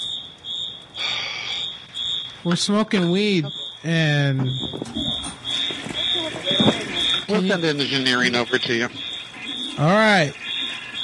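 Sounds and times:
smoke detector alarm beeping: 0:00.0 - 0:11.0
speech: 0:02.4 - 0:05.4, 0:06.6 - 0:09.1, 0:09.8 - 0:10.4.

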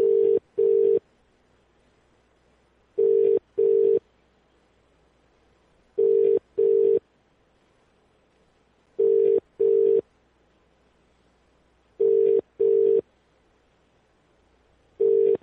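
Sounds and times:
telephone ringback tone in double pulses: 0:00.0 - 0:01.0, 0:03.0 - 0:04.0, 0:06.0 - 0:07.0, 0:09.0 - 0:10.0, 0:12.0 - 0:13.0, 0:15.0 - 0:15.4.

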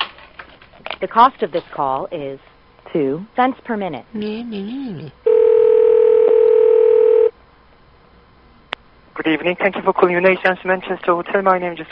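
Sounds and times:
speech: 0:01.0 - 0:05.3, 0:09.2 - 0:11.8
telephone line ringing tone during a call to a hotel: 0:05.2 - 0:07.3.

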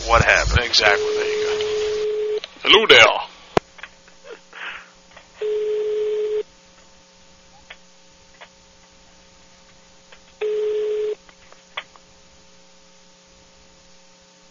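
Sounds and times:
speech: 0:00.1 - 0:01.4, 0:02.7 - 0:03.2
ringback tone of an outgoing telephone call: 0:00.8 - 0:02.4, 0:05.4 - 0:06.4, 0:10.4 - 0:11.2.

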